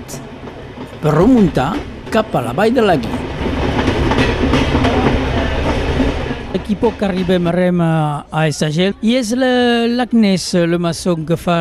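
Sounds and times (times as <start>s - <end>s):
train wheels clacking over track joints: 0.0s - 7.6s
train running on rails climbing a valley in Roussillon France: 0.0s - 11.5s
speech: 1.0s - 3.2s, 6.7s - 11.5s.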